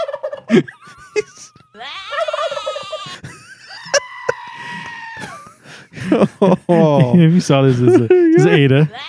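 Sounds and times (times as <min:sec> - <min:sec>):
toy playing a recorded turkey gobble: 0:00.0 - 0:00.5, 0:02.1 - 0:03.1
speech: 0:00.5 - 0:00.8, 0:06.1 - 0:09.0
laughter: 0:00.5 - 0:09.0
bleating tone: 0:01.7 - 0:03.1.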